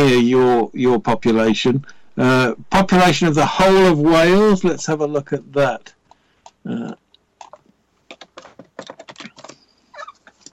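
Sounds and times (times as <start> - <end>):
speech: 0.0 - 6.0, 6.6 - 7.0
typing on a computer keyboard: 7.4 - 9.6.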